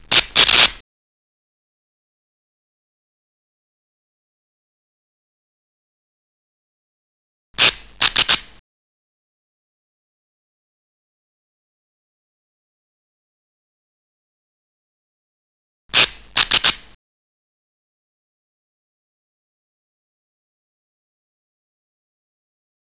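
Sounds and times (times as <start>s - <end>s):
sparks: 0.0s - 0.8s, 7.6s - 8.6s, 15.9s - 17.0s.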